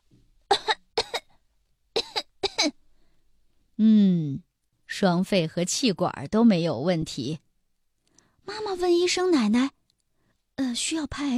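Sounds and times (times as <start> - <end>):
child coughing forcefully during a doctor's check-up: 0.5 - 1.4, 2.0 - 2.8
speech: 3.8 - 4.1, 5.0 - 7.4, 8.5 - 9.8, 10.6 - 11.3.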